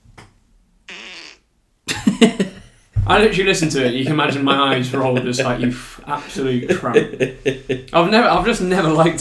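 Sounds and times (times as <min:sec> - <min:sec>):
recorded fart in a voice note: 0:00.9 - 0:01.5
laughter: 0:01.9 - 0:09.1
speech: 0:02.2 - 0:09.1.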